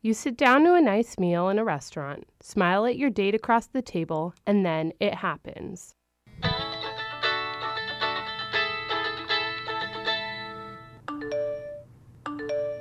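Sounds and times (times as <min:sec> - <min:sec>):
speech: 0:00.0 - 0:06.6
phone ringtones: 0:07.7 - 0:12.7
message notification alerts: 0:11.1 - 0:12.7.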